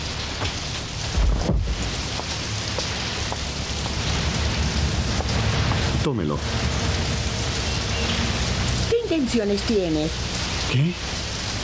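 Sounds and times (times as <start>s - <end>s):
steady rain: 0.0s - 11.6s
low rumble like thunder: 0.8s - 9.1s
speech: 6.1s - 7.0s, 9.1s - 11.2s.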